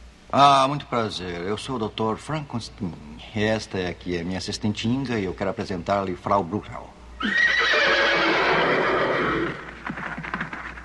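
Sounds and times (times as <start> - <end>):
speech: 0.3 - 7.6
horses neighing: 7.2 - 10.6
horses stamping hooves: 9.5 - 10.8.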